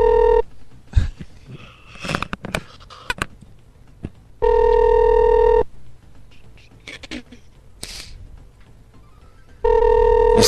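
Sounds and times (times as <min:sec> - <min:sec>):
telephone ringing in a hotel room: 0:00.0 - 0:00.4, 0:04.4 - 0:05.6, 0:09.6 - 0:10.4.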